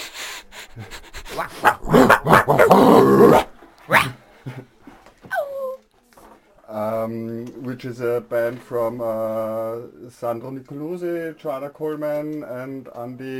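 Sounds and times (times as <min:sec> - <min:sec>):
speech: 0:00.8 - 0:04.6, 0:07.8 - 0:13.3
dogs growling and barking: 0:01.3 - 0:04.2
dog short high whine: 0:01.4 - 0:04.2, 0:05.3 - 0:05.8.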